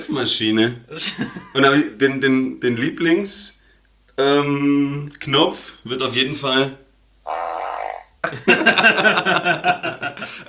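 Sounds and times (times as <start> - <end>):
speech: 0.1 - 3.6, 4.2 - 7.4, 8.3 - 10.4
laughter: 0.9 - 1.9, 8.2 - 10.4
fart sound effect from soundboard machine: 7.3 - 8.2.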